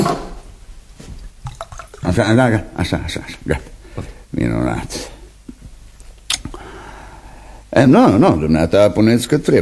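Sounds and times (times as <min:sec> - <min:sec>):
quieter trickles and drips of wine and water: 0:01.2 - 0:02.2
white wine and water poured into a cup: 0:01.3 - 0:02.2
light clinks of the cup: 0:01.4 - 0:02.1
speech: 0:02.1 - 0:05.1, 0:07.7 - 0:09.6.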